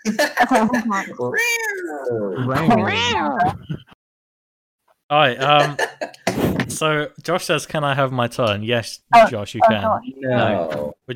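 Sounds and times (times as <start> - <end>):
speech: 0.0 - 4.0, 5.1 - 11.1
person imitating cat meows with a wavering yowl: 2.7 - 3.6.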